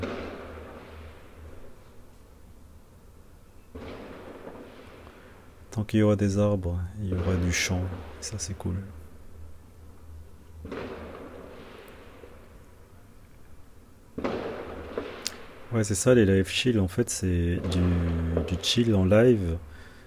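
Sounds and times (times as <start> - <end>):
fireworks exploding: 0.0 - 1.8, 3.7 - 5.4, 7.1 - 9.0, 10.6 - 12.6, 14.2 - 15.8, 17.5 - 19.6
low hum: 0.0 - 20.0
speech: 5.8 - 9.0, 15.8 - 19.7.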